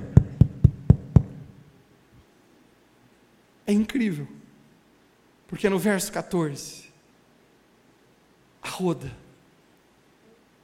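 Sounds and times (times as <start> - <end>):
firm knocking on a door: 0.0 - 1.4
speech: 3.7 - 4.4, 5.5 - 6.9, 8.7 - 9.2.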